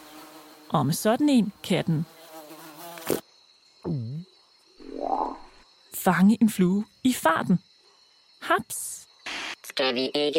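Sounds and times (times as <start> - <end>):
speech: 0.7 - 2.2, 6.1 - 7.7, 8.5 - 9.0, 9.8 - 10.3
frog calls: 3.8 - 5.7.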